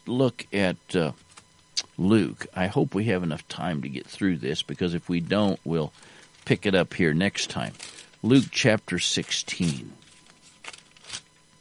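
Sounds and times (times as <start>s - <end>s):
speech: 0.1s - 1.2s, 2.0s - 10.0s
thin Bible pages being turned: 7.4s - 8.6s, 9.2s - 11.3s.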